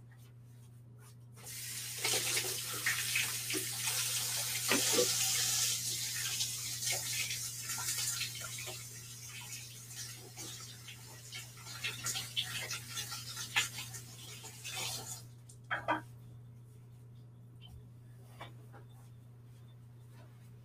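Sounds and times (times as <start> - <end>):
running tap water as hands are washed in a kitchen: 1.4 - 15.3.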